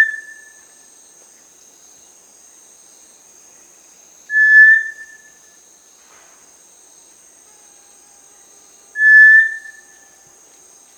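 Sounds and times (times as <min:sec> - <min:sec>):
Cinereous Tinamou Crypturellus cinereus clear whistle in Peru: 0:04.3 - 0:05.1, 0:09.0 - 0:09.9.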